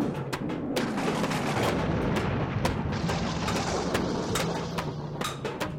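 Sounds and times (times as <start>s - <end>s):
thunderbolt crashes and booms: 0.0s - 5.6s
continuous low thunder rumble: 0.6s - 5.2s.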